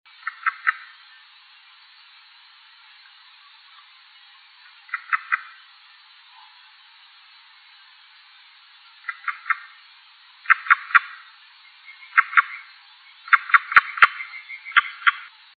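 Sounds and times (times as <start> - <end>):
Pelobates fuscus calling: 0.1 - 1.3, 3.0 - 5.7, 8.8 - 15.3.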